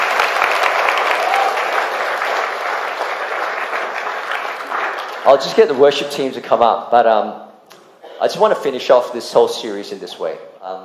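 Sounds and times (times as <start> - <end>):
audience applause: 0.0 - 5.7
speech: 5.3 - 7.4, 8.2 - 10.8.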